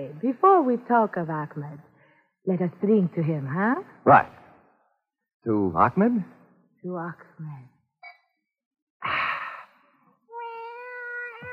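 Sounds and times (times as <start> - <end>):
speech: 0.0 - 4.4, 5.4 - 7.7
cat meowing: 10.3 - 11.5.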